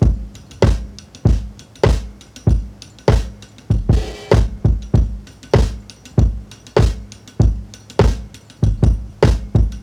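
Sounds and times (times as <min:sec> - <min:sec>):
heavy step breakbeat: 0:00.0 - 0:09.8.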